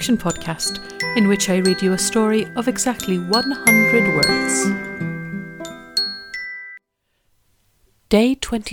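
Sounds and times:
speech: 0:00.0 - 0:05.0, 0:08.1 - 0:08.7
church bells ringing: 0:00.0 - 0:06.8.

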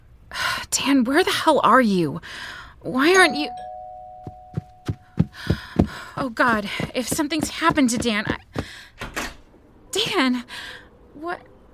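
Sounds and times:
speech: 0:00.8 - 0:03.7, 0:06.2 - 0:08.8, 0:10.0 - 0:11.5
doorbell chime: 0:03.1 - 0:05.2
dull thumps: 0:04.3 - 0:08.8.

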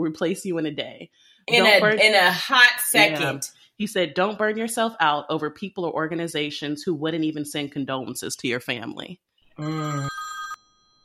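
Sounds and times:
speech: 0:00.0 - 0:10.2
electronic telephone ring sound effect: 0:09.9 - 0:11.0.

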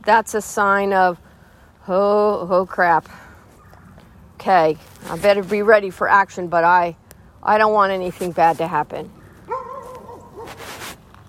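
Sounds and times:
speech: 0:00.0 - 0:03.3, 0:04.4 - 0:09.2
dog barking: 0:09.5 - 0:10.6.

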